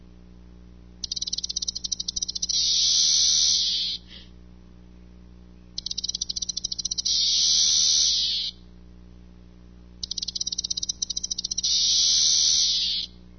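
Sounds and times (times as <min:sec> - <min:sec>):
cicada song: 0:01.0 - 0:04.1, 0:05.8 - 0:08.6, 0:10.0 - 0:13.2.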